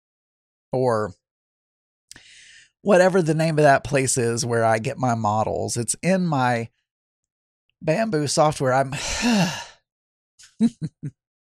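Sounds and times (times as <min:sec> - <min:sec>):
speech: 0:00.7 - 0:01.2, 0:02.8 - 0:06.8, 0:07.8 - 0:09.7, 0:10.6 - 0:11.2
person sighing: 0:08.9 - 0:09.8.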